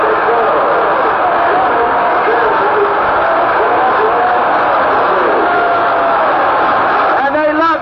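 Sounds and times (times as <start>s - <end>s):
large stadium crowd cheering after a field goal: 0.0s - 7.7s.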